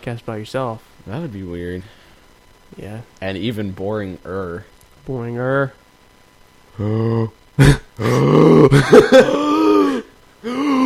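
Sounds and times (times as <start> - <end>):
speech: 0.0 - 2.0, 2.7 - 5.8, 6.8 - 9.5
person gasping loudly with a cow-like tone: 6.8 - 10.8.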